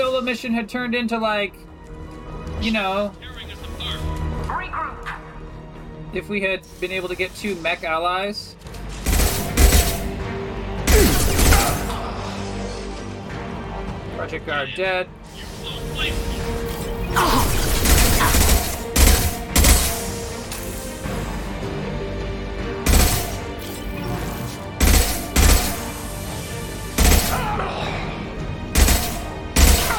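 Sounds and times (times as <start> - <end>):
busy video game noise: 0.0 - 29.9
speech: 0.2 - 1.7, 2.6 - 5.2, 6.1 - 8.8, 14.2 - 16.6
video game gunfire bursts: 9.1 - 10.2, 10.9 - 12.0, 17.2 - 20.2, 22.9 - 23.5, 24.8 - 26.0, 27.0 - 27.6, 28.7 - 29.9.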